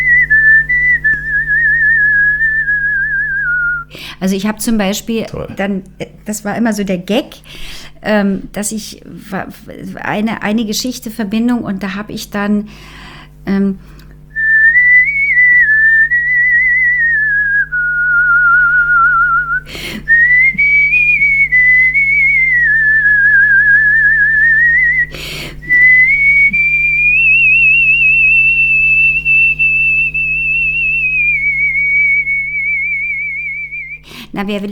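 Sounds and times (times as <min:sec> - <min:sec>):
man softly whistling an opera aria melody into a microphone: 0:00.0 - 0:03.9, 0:14.3 - 0:34.0
steady low hum: 0:00.0 - 0:03.9, 0:14.3 - 0:34.2
speech: 0:04.2 - 0:14.0, 0:34.4 - 0:34.6.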